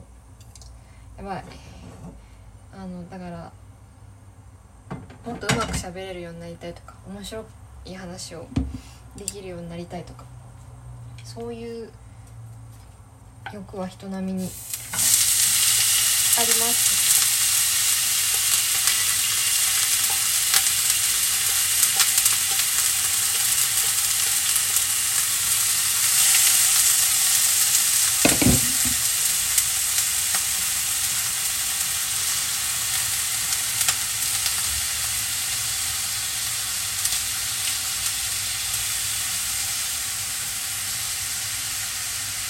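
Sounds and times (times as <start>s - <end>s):
speech: 1.2s - 1.7s, 2.8s - 3.6s, 5.2s - 10.3s, 11.3s - 12.0s, 13.4s - 14.8s
sesame oil sizzling in a hot pan: 14.4s - 42.4s.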